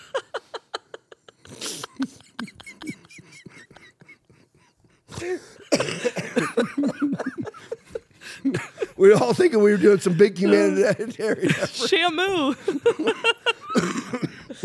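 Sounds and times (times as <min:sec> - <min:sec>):
laughter: 0:00.0 - 0:14.6
person coughing harshly: 0:05.1 - 0:07.0, 0:13.7 - 0:14.6
speech: 0:09.0 - 0:13.3.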